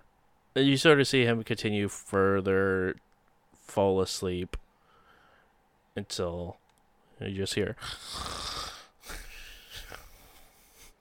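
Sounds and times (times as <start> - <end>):
speech: 0.6 - 3.1, 3.7 - 4.6, 6.0 - 6.6, 7.2 - 8.6
voice imitating snoring: 7.8 - 9.4.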